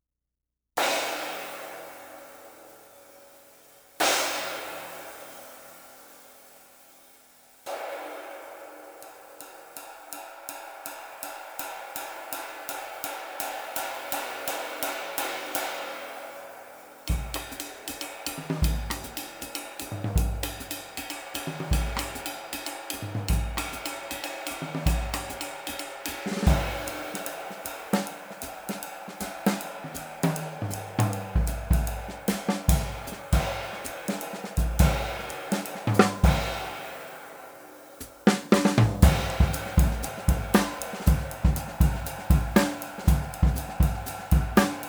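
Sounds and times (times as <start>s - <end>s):
24 inch Zildjian K Custom cymbal: 0.8s - 44.8s.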